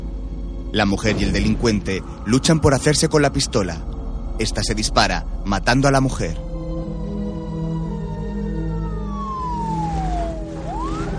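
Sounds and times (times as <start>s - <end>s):
speech: 0.7s - 6.4s
ambulance siren arriving along a city street: 7.0s - 11.1s.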